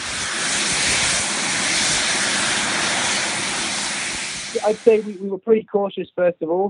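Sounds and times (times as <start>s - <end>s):
two small experimental jet engines strapped to a man's arms roaring at high power: 0.0s - 5.2s
speech: 4.6s - 6.6s.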